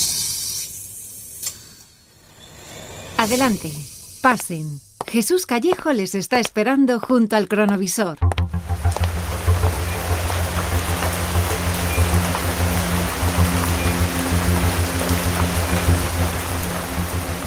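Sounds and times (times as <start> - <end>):
speech: 3.2 - 8.3
low droning rumble: 8.2 - 17.4
heavy rain downpour: 8.6 - 17.4.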